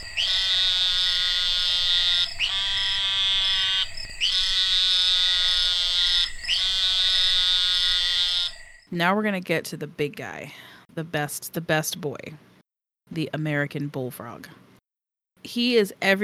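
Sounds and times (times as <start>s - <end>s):
narrow-mouthed toad calling with nasal buzzing bleats: 0.0s - 8.9s
speech: 8.9s - 12.5s, 13.1s - 14.7s, 15.4s - 16.2s.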